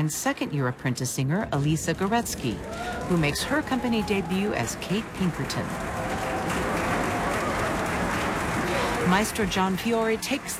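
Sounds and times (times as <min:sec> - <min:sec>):
speech: 0:00.0 - 0:06.0, 0:09.1 - 0:10.5
large opera audience applauding the orchestra: 0:02.1 - 0:10.5.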